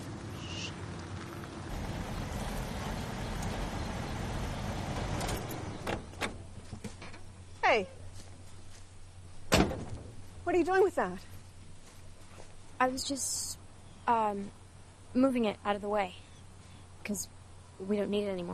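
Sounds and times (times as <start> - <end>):
truck engine rumbling and idling while pulling up at a house: 0.0 - 7.6
vehicle door opening and shutting: 1.7 - 7.3, 9.5 - 10.2
speech: 7.7 - 8.0, 10.5 - 11.3, 12.8 - 16.2, 17.1 - 18.5.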